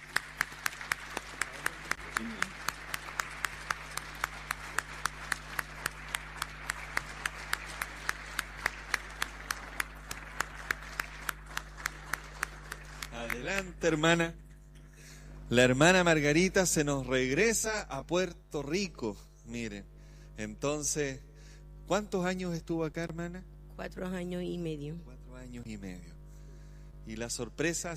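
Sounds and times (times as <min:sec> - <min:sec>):
audience clapping: 0:00.0 - 0:14.2
speech: 0:13.5 - 0:14.4, 0:15.5 - 0:21.3, 0:21.9 - 0:26.1, 0:27.1 - 0:27.9.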